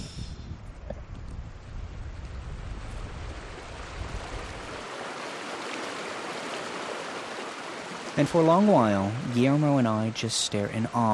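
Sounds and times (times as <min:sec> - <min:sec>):
light breezy hiss: 0:00.0 - 0:11.1
mountain lake water rushing and lapping: 0:01.6 - 0:11.1
speech: 0:08.2 - 0:11.1.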